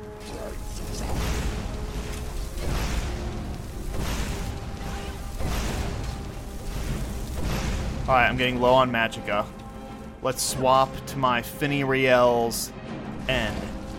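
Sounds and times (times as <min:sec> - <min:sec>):
constant layer of fantasy role-playing video game sound: 0:00.0 - 0:13.9
fire bolt spells cast in a fantasy role-playing video game: 0:00.6 - 0:10.2
speech: 0:08.1 - 0:09.6, 0:10.2 - 0:13.7.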